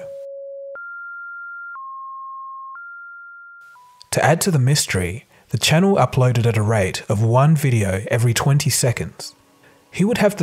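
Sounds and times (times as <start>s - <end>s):
electronic ringing tone stepping between pitches: 0.0s - 4.0s
speech: 4.1s - 10.4s.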